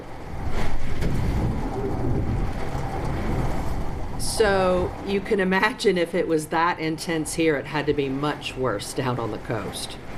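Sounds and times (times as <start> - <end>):
heavy rain against window during hurricane: 0.0 - 5.3
hurricane wind gusts: 0.0 - 6.3
speech: 4.4 - 10.1.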